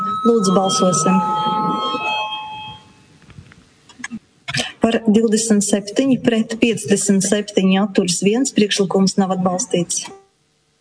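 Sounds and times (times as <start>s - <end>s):
electric bell ringing in a parliament chamber to call members to a vote: 0.0s - 3.2s
low room noise in a parliament chamber: 0.0s - 10.7s
speech: 0.2s - 2.0s, 4.9s - 10.2s.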